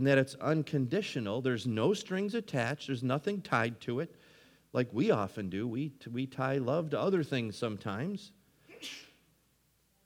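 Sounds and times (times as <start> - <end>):
speech: 0.0 - 9.1
person sneezing: 8.6 - 9.3.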